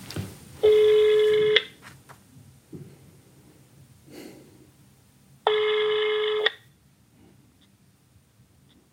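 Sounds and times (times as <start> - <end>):
rustling: 0.0 - 3.0
ringback tones through a phone speaker: 0.6 - 1.8, 5.5 - 6.6
faint breathing: 2.8 - 4.8, 7.1 - 7.6.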